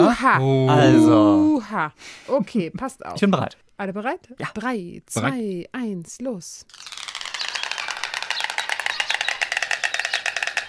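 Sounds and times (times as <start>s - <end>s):
speech: 0.1s - 6.9s
white stork bill clattering: 6.7s - 10.6s.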